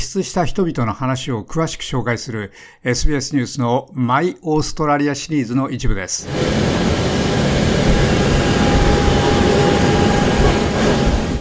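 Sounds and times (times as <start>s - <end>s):
speech: 0.1s - 6.9s
P-8A Poseidon modified Boeing 737 jet engines roaring overhead: 6.2s - 11.4s.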